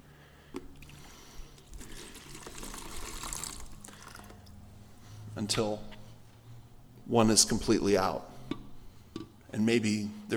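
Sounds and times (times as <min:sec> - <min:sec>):
water being poured out into a wastebasket: 0:00.8 - 0:04.6
speech: 0:05.4 - 0:06.0, 0:07.1 - 0:08.3, 0:09.6 - 0:10.3.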